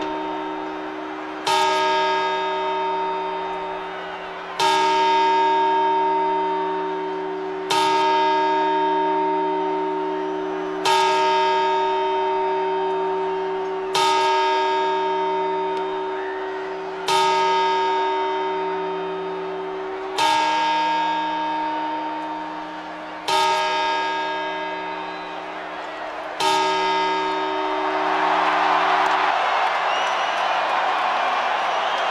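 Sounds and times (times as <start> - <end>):
large church bell striking midnight chimes: 0.0 - 32.0.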